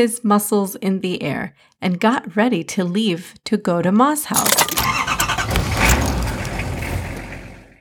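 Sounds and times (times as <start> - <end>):
speech: 0.0 - 5.0
car engine starting and rumbling: 4.4 - 7.8.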